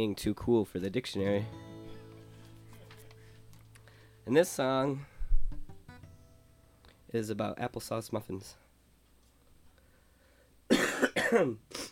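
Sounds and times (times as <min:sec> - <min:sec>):
speech: 0:00.0 - 0:01.6, 0:04.2 - 0:05.1, 0:07.1 - 0:08.6, 0:11.3 - 0:11.9
sick person coughing: 0:10.7 - 0:11.9
throat clearing: 0:10.7 - 0:11.9.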